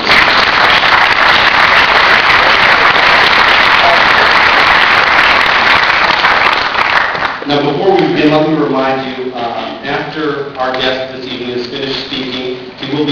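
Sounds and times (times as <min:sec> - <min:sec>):
large audience applauding at an event: 0:00.0 - 0:07.4
speech: 0:08.2 - 0:09.5, 0:10.2 - 0:12.4.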